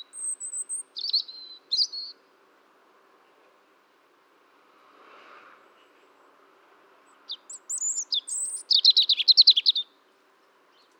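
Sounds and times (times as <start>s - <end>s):
European robin Erithacus rubecula singing: 0.0s - 2.3s, 7.2s - 10.9s.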